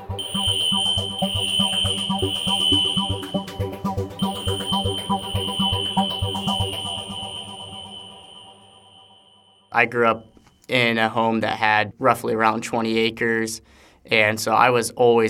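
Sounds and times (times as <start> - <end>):
fire alarm blaring a high-pitched tone: 0.0 - 10.4
speech: 9.8 - 15.2.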